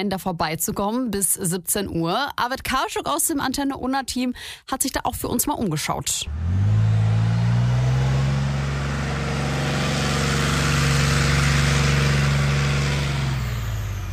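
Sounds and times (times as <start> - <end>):
speech: 0.0 - 6.8
heavy diesel armoured recovery tank engine rumbling at a military training ground: 6.3 - 14.1.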